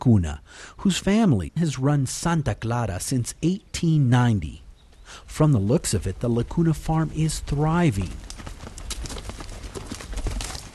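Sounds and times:
speech: 0:00.0 - 0:08.3
horses ridden by field hands on a sugarcane farm clip-clopping: 0:06.2 - 0:10.7.

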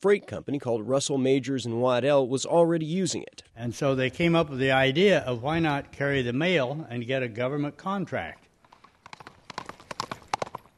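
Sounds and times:
speech: 0:00.0 - 0:08.4
horse hooves galloping with riders relaying mail: 0:08.1 - 0:10.7.

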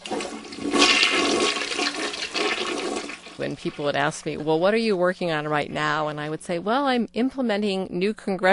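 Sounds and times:
low-flush toilet flushing: 0:00.0 - 0:04.6
speech: 0:03.4 - 0:08.5.

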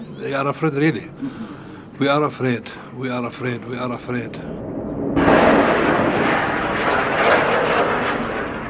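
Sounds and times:
speech: 0:00.2 - 0:04.6
military helicopter rocket fire overhead: 0:04.3 - 0:08.6.

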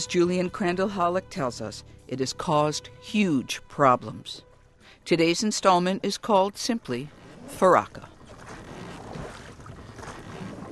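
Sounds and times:
speech: 0:00.0 - 0:08.1
steady wash of water from a rowing boat on a broad river: 0:06.7 - 0:10.7.

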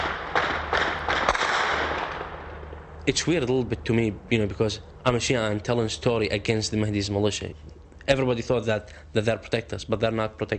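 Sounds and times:
gunshots at night: 0:00.0 - 0:02.7
steady hiss of noise: 0:00.0 - 0:10.5
speech: 0:03.1 - 0:10.5.

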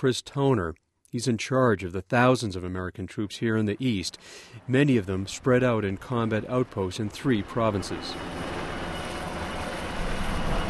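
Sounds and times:
speech: 0:00.0 - 0:08.5
Black Hawk military helicopter lifting off from a combat outpost in eastern Afghanistan: 0:03.7 - 0:10.6.

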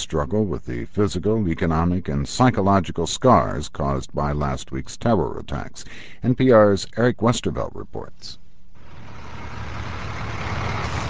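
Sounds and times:
speech: 0:00.1 - 0:08.4
heavy dump truck engines rumbling at a disaster debris site: 0:08.8 - 0:11.0.

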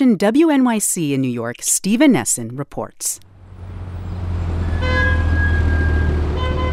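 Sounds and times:
speech: 0:00.1 - 0:03.3
slow city street traffic engine rumble: 0:03.2 - 0:06.7
car horn honking: 0:04.6 - 0:06.7.

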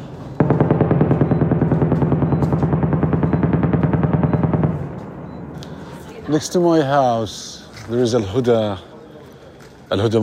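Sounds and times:
automatic gunfire during intense shelling on a war-zone street in Rafah: 0:00.4 - 0:05.0
speech: 0:06.3 - 0:08.9, 0:09.9 - 0:10.2.

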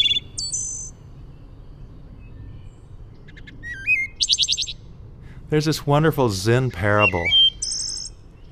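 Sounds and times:
birds singing: 0:00.0 - 0:08.5
low outdoor rumble: 0:00.0 - 0:08.5
speech: 0:05.5 - 0:07.5.

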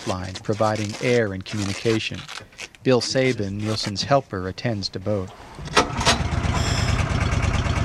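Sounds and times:
speech: 0:00.0 - 0:05.9
air compressor on a diving boat running: 0:05.3 - 0:07.8.

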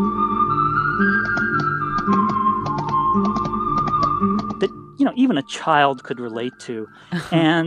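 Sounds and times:
simple whistled tune from a film score: 0:00.0 - 0:07.1
low instrumental backing: 0:00.0 - 0:07.6
sharp clicky percussive hits: 0:01.1 - 0:04.8
speech: 0:04.6 - 0:07.6.

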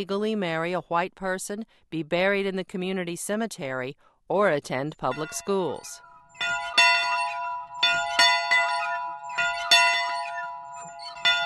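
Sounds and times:
speech: 0:00.0 - 0:06.6
school bell ringing: 0:05.0 - 0:11.4.

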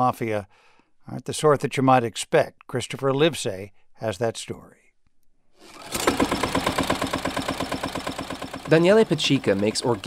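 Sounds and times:
speech: 0:00.0 - 0:04.8, 0:08.7 - 0:10.0
tractor engine running in an organic olive grove in Calabria: 0:05.8 - 0:10.0.

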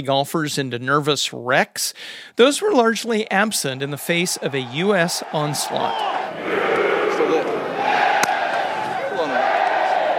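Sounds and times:
speech: 0:00.0 - 0:07.4
large outdoor golf crowd cheering and roaring in Wisconsin: 0:03.8 - 0:10.1
sharp crack: 0:08.1 - 0:08.6.

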